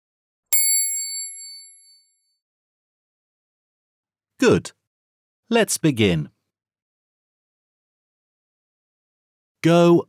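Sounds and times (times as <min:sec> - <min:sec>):
page-turn bell ding: 0:00.6 - 0:02.1
speech: 0:04.4 - 0:04.8, 0:05.5 - 0:06.4, 0:09.6 - 0:10.0.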